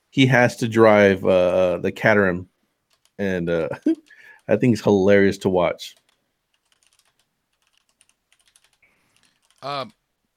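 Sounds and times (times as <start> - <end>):
speech: 0.1 - 2.5, 3.2 - 6.0, 9.6 - 10.0
typing on a computer keyboard: 2.9 - 3.2, 5.9 - 10.0.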